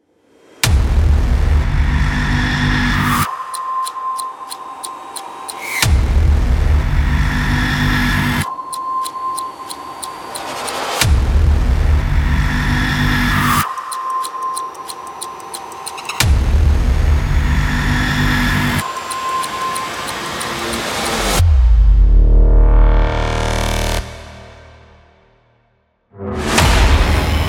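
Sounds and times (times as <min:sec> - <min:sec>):
scary background music: 0:00.2 - 0:27.4
horror teaser countdown: 0:02.8 - 0:06.6, 0:07.2 - 0:11.4, 0:12.2 - 0:21.6.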